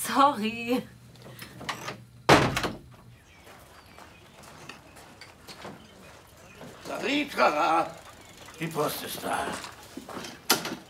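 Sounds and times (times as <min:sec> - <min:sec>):
speech: 0:00.2 - 0:01.0, 0:06.9 - 0:08.0, 0:08.6 - 0:10.3
door shutting with thud: 0:01.6 - 0:03.0
faint shuffling: 0:03.0 - 0:10.8.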